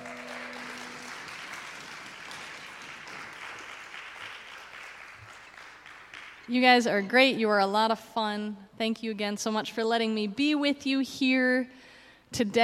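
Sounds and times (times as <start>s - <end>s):
brief tonal hum: 0.0s - 1.5s
crowd applause: 0.0s - 6.5s
speech: 6.5s - 12.6s.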